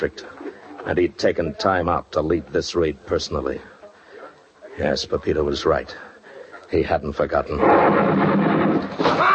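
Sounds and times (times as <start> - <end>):
speech: 0.0 - 3.7, 4.8 - 6.1, 6.7 - 8.2
burst of machine-gun fire: 7.6 - 9.2.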